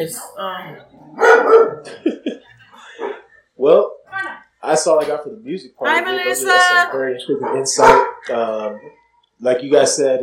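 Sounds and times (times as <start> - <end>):
speech: 0.0 - 2.4, 3.6 - 3.9, 4.6 - 10.2
dogs barking: 1.0 - 2.0, 2.9 - 3.3, 7.3 - 9.0.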